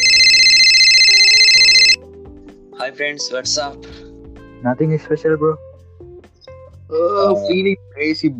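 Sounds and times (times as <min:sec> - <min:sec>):
electronic phone call ringtone: 0:00.0 - 0:02.0
speech: 0:02.9 - 0:04.0, 0:04.6 - 0:05.7, 0:06.9 - 0:08.3.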